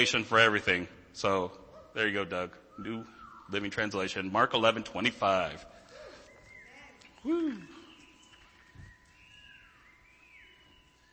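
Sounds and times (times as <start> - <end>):
speech: 0.0 - 5.8, 7.2 - 7.7
swooping bird-like whistle: 2.4 - 4.3, 5.0 - 11.1
faint thin chirping tones: 5.3 - 11.1.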